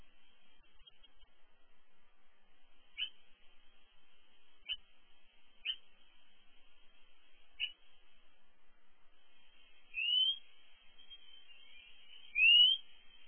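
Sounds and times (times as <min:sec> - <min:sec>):
European robin high thin whistles sweeping upward: 0:09.9 - 0:13.2.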